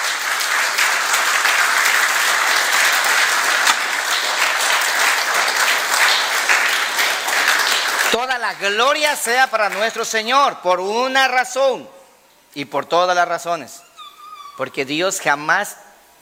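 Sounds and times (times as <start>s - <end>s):
church audience applauding: 0.0s - 8.4s
speech: 8.5s - 13.9s, 14.6s - 15.8s.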